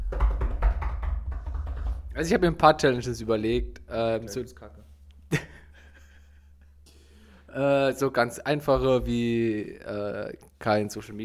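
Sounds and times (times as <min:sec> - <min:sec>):
drum roll tapped out by hand on a hard surface: 0:00.0 - 0:02.8
speech: 0:02.2 - 0:05.4, 0:07.6 - 0:11.2
laughter: 0:05.3 - 0:06.6.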